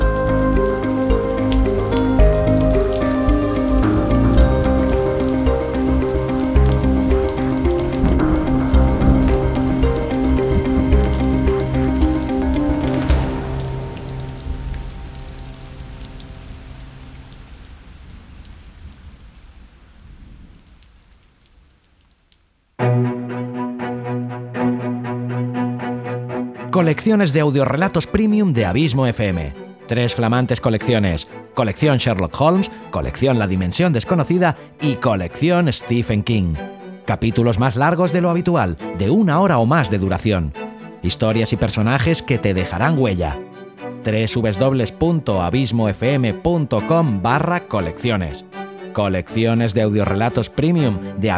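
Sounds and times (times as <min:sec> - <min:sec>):
sustained musical drone: 0:00.0 - 0:17.3
music passage: 0:00.0 - 0:17.4, 0:22.8 - 0:26.9
steady dense rain: 0:00.0 - 0:22.8
speech: 0:26.9 - 0:51.3.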